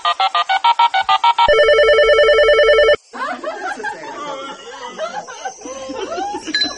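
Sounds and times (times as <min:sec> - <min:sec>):
steady phone tone: 0:00.6 - 0:03.0
telephone call ringing: 0:00.7 - 0:03.0
laughter: 0:03.1 - 0:06.7.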